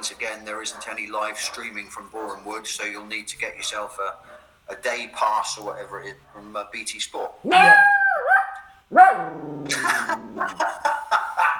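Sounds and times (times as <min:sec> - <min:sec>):
speech: 0:00.2 - 0:07.9, 0:08.9 - 0:10.7
puppy barking and whining: 0:00.6 - 0:02.4, 0:03.5 - 0:04.5, 0:07.2 - 0:09.4, 0:10.2 - 0:11.5
laughter: 0:09.7 - 0:11.5.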